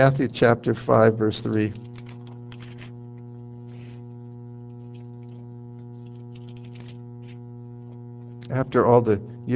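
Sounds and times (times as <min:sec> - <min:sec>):
speech: 0:00.0 - 0:01.8, 0:08.5 - 0:09.5
air conditioner switching on and humming: 0:00.0 - 0:09.5.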